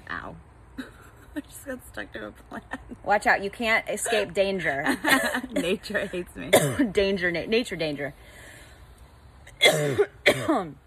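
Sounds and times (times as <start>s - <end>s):
speech: 1.4s - 8.4s, 9.7s - 10.8s
harsh coughs after smoking: 6.5s - 6.9s, 9.6s - 10.7s.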